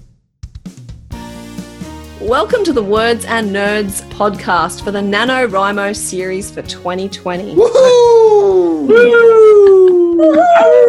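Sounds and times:
speech: 0:02.2 - 0:10.8
several people howling like wolves: 0:07.6 - 0:10.8.

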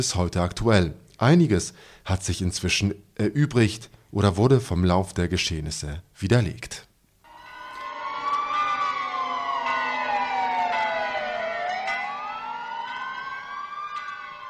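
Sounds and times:
speech: 0:00.0 - 0:06.9
several sirens wailing in Poland as disaster victims are bid farewell: 0:07.3 - 0:14.4.

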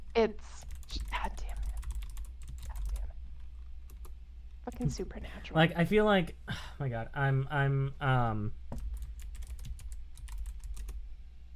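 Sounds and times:
low steady hum: 0:00.0 - 0:11.5
speech: 0:00.2 - 0:01.1, 0:04.7 - 0:08.6
typing on a computer keyboard: 0:00.6 - 0:03.1, 0:03.9 - 0:04.1, 0:08.8 - 0:11.0.

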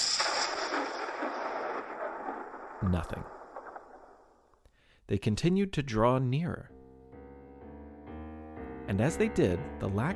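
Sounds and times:
cannon blast fired from a ship: 0:00.0 - 0:04.4
speech: 0:02.8 - 0:03.4, 0:05.1 - 0:06.8, 0:08.9 - 0:10.1.

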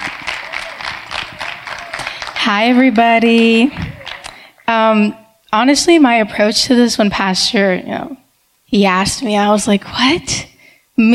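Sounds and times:
audience applauding: 0:00.0 - 0:04.7
speech: 0:02.5 - 0:03.9, 0:04.7 - 0:11.1.

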